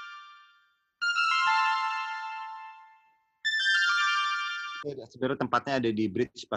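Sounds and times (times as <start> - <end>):
bright bell-like synth tones from a vintage Roland Juno-60: 0.0 - 4.9
speech: 4.8 - 6.5.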